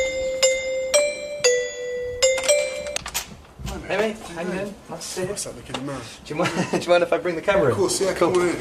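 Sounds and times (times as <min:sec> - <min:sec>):
electronic doorbell chiming a tune: 0:00.0 - 0:03.1
speech: 0:04.0 - 0:08.5.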